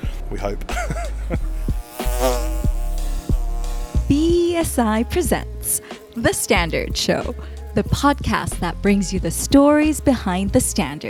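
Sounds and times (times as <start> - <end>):
speech: 0.3 - 1.5, 4.6 - 11.0
laughter: 0.4 - 1.6
worker honeybees buzzing in an open hive: 0.7 - 11.0.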